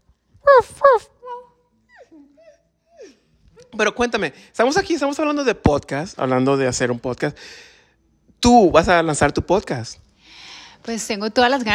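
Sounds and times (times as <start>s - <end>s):
small dog yapping: 0.4s - 3.7s
speech: 0.6s - 1.2s, 3.8s - 7.7s, 8.4s - 11.7s.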